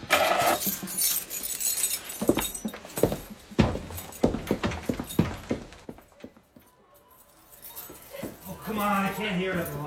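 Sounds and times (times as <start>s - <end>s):
bunch of keys jangling: 0.4s - 5.5s, 6.9s - 9.8s.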